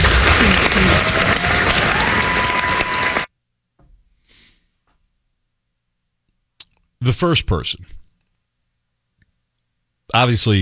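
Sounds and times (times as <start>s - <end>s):
audience applauding after a band's performance: 0.0s - 3.3s
speech: 7.0s - 8.0s, 10.1s - 10.6s.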